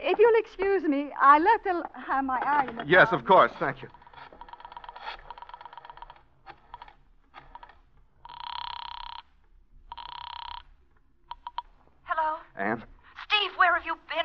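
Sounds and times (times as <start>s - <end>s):
speech: 0.2s - 4.0s, 12.6s - 12.9s
telephone ringing during an outgoing call: 1.9s - 12.1s
rapid clicking like a dial being worked: 3.9s - 11.8s.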